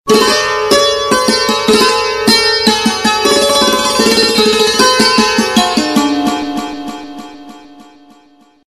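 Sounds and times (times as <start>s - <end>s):
santoor message tone: 0.1s - 8.6s.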